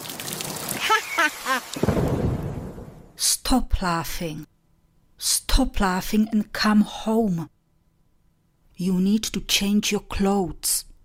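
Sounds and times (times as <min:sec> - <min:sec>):
steady rain: 0:00.0 - 0:03.2
speech: 0:01.1 - 0:01.8, 0:03.5 - 0:04.5, 0:05.2 - 0:07.6, 0:08.8 - 0:10.9
thunder rumble: 0:01.8 - 0:03.2.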